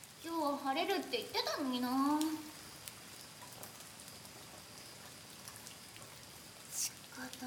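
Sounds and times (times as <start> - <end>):
steady rain falling: 0.0 - 7.4
speech: 0.2 - 2.5.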